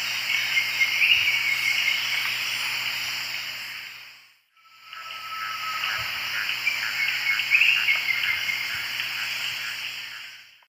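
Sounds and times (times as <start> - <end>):
Hemitriccus minimus alternate song in South American eastern lowlands: 0.1 - 2.6, 4.5 - 10.3.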